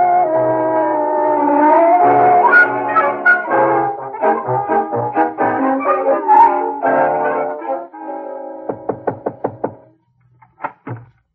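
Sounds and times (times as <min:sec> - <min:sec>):
brassy music: 0:00.2 - 0:08.7
knocking on a door: 0:08.7 - 0:09.9, 0:10.7 - 0:11.1.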